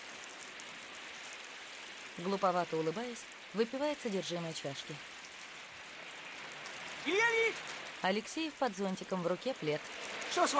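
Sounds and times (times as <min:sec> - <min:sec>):
steady rain: 0:00.0 - 0:10.5
speech: 0:02.2 - 0:05.1, 0:07.0 - 0:10.5.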